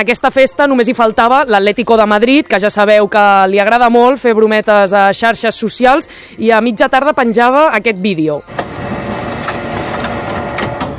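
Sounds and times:
speech: 0.0s - 8.7s
printer printing out a sheet of paper: 8.5s - 10.9s.

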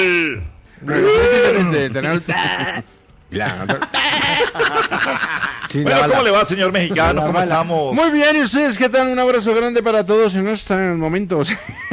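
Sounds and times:
donkey braying: 0.0s - 2.9s, 3.8s - 4.9s
speech: 0.0s - 11.9s
laughter: 1.1s - 7.4s, 11.5s - 11.9s
calf bleating: 2.2s - 2.9s.

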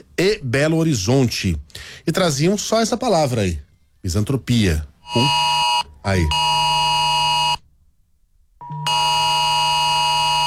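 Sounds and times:
speech: 0.2s - 6.6s
harsh phone emergency alert tone sent to phones in Brazil: 5.0s - 7.6s, 8.6s - 10.4s.

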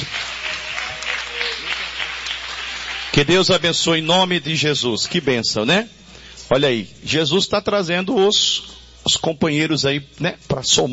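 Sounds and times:
congregation applauding during a church service: 0.0s - 5.8s
speech: 3.2s - 10.9s.

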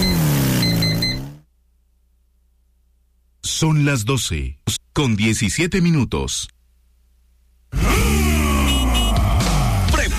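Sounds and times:
motorcycle engine revving: 0.0s - 1.5s, 7.7s - 10.0s
speech: 3.6s - 6.6s.

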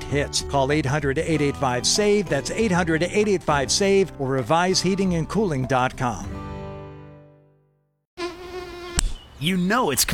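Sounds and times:
speech: 0.1s - 6.4s, 9.4s - 10.1s
mosquito whining buzz sound effect in a mosquito control advert: 8.2s - 9.3s.

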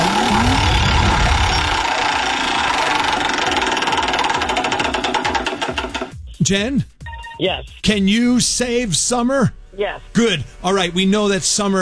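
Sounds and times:
prize wheel spinning with rapid ratcheting clicks: 0.0s - 6.2s
speech: 6.5s - 11.7s.

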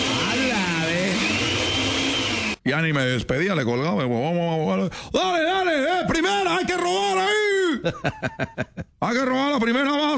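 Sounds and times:
kitchen blender whirring: 0.0s - 2.6s
speech: 2.6s - 10.1s
laughter: 7.7s - 9.0s.

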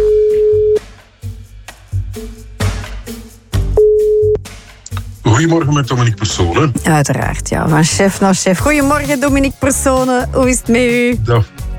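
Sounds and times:
phone line ringback tones: 0.0s - 0.8s, 3.8s - 4.4s
rhythmic musical backing: 0.0s - 11.7s
speech: 5.4s - 11.7s.

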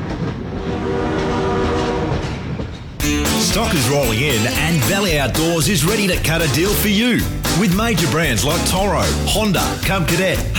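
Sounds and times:
train rumbling past: 0.0s - 6.1s
train horn blast: 0.4s - 2.5s
speech: 3.6s - 10.5s.

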